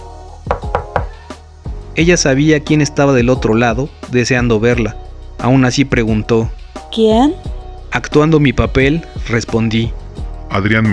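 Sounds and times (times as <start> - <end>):
knocks on a wooden door: 0.4 - 1.2
soft dull thumps: 0.5 - 1.2
speech: 2.0 - 10.9.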